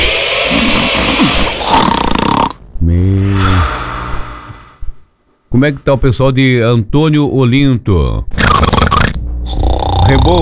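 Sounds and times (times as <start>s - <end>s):
loud exaggerated snoring effect: 0.0s - 5.1s, 8.4s - 10.4s
speech: 5.6s - 8.4s, 10.1s - 10.4s.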